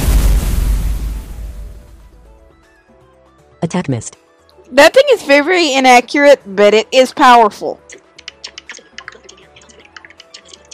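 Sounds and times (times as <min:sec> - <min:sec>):
video game fire cannon shot explosion: 0:00.0 - 0:02.4
speech: 0:03.6 - 0:07.9.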